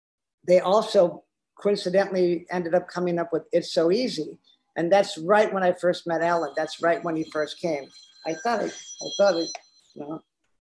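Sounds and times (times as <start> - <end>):
speech: 0.4 - 10.3
mobile phone ringing with a bright electronic ringtone: 6.2 - 10.0.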